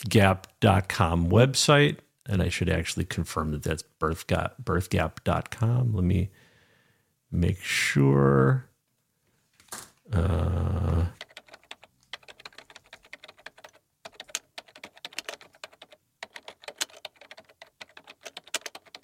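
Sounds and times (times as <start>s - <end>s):
speech: 0.0s - 6.4s, 7.3s - 8.7s, 9.7s - 11.2s
rapid irregular keyboard typing: 11.1s - 19.0s.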